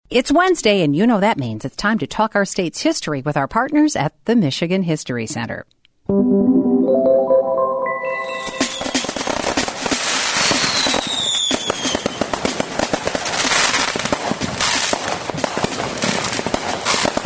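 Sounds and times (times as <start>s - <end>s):
speech: 0.1s - 7.1s
fireworks exploding in a dense barrage: 8.3s - 17.2s.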